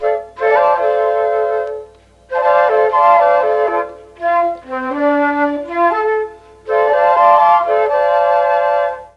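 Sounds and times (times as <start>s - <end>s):
mellotron flute C4 note: 0.0s - 9.1s.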